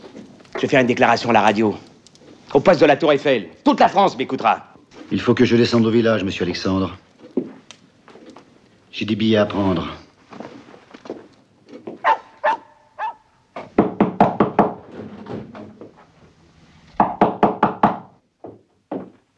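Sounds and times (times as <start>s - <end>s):
speech: 0.6s - 1.9s, 2.5s - 7.0s, 9.0s - 10.0s
knocking on a door: 13.6s - 14.8s, 17.0s - 18.1s.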